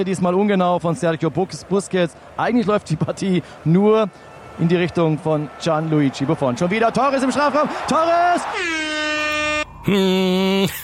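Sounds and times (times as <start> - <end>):
speech: 0.0 - 9.2, 9.8 - 10.8
loud sustained air horn blasts: 8.6 - 10.8.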